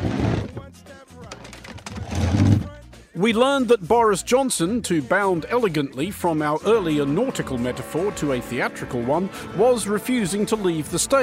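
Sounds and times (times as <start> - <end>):
heavy furniture scraping across a floor, pushed against a door: 0.0 - 0.6, 1.9 - 2.7
speech: 3.2 - 11.2.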